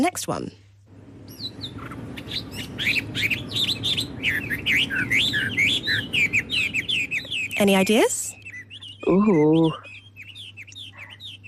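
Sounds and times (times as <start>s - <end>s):
speech: 0.0s - 0.6s, 2.3s - 6.6s, 7.6s - 8.2s, 9.0s - 9.9s
steady low rumble: 0.3s - 9.2s
common blackbird singing fluty warbling phrases: 1.2s - 11.4s.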